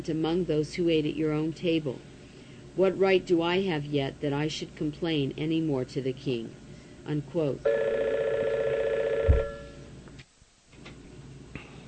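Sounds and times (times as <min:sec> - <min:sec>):
speech: 0:00.0 - 0:02.1, 0:02.8 - 0:08.2
faint noise: 0:00.0 - 0:11.8
telephone ringing with a warbling electronic tone: 0:07.7 - 0:09.9.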